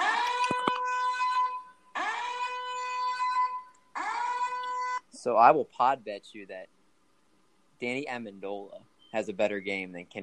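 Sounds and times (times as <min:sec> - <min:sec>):
loud harmonically rich alarm sound effect blaring: 0:00.0 - 0:05.0
speech: 0:05.2 - 0:06.8, 0:07.8 - 0:10.2.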